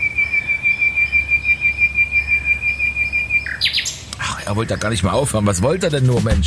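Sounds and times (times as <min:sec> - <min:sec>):
bird singing a high thin whistling note in a tree: 0:00.0 - 0:05.0
speech: 0:04.5 - 0:06.4.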